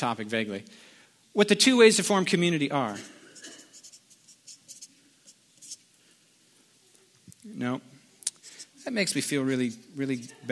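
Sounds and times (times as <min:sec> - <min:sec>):
speech: 0:00.0 - 0:03.2, 0:07.4 - 0:07.9, 0:08.8 - 0:10.5
pen scratching across a sheet of paper: 0:03.0 - 0:04.9, 0:05.6 - 0:05.8.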